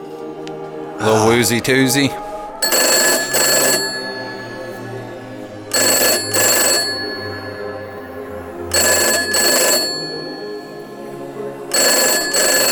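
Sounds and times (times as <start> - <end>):
speech: 1.0 - 2.8
old rotary landline telephone ringing: 2.6 - 11.0, 11.7 - 12.6.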